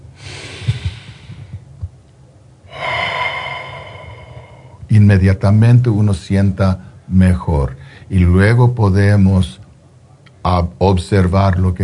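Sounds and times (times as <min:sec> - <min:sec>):
deep breathing in and out: 0:00.0 - 0:01.6, 0:02.6 - 0:05.0
speech: 0:05.0 - 0:09.6, 0:10.4 - 0:11.8.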